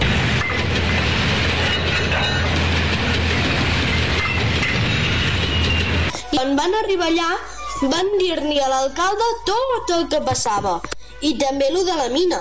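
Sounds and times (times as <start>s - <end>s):
high-speed train running on rails: 0.0s - 6.2s
speech: 6.6s - 12.3s.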